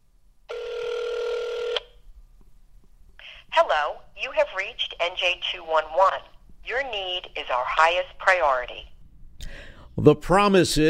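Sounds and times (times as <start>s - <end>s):
buzzing electronic telephone tone of a call to a helpline: 0.5s - 2.0s
speech: 3.8s - 8.9s, 10.0s - 10.8s.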